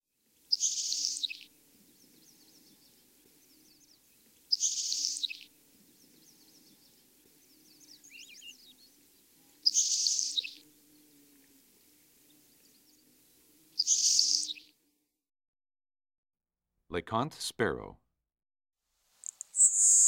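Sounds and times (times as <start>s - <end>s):
Nelson's Sparrow song with harsh hissing high buzz: 0.3s - 14.9s, 19.2s - 20.0s
speech: 17.0s - 18.0s.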